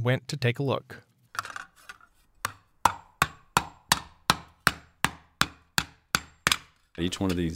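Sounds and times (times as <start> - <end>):
speech: 0.0 - 1.0, 7.0 - 7.5
hand hammering on recycled copper in an Austin copper workshop: 2.4 - 7.4.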